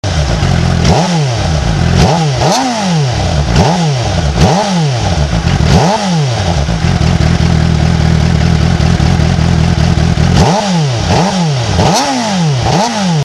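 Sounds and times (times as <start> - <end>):
Suzuki GSR 600 motorcycle engine: 0.0 - 13.2.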